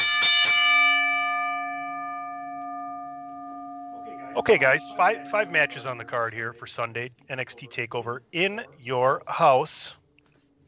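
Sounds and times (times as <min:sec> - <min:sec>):
wrestling ring bell clanging: 0:00.0 - 0:06.6
speech: 0:04.4 - 0:10.0.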